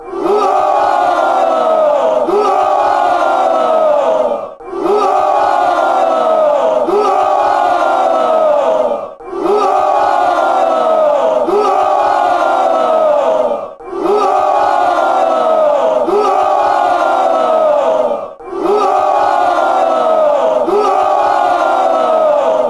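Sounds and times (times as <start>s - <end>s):
fans chanting: 0.0s - 22.6s.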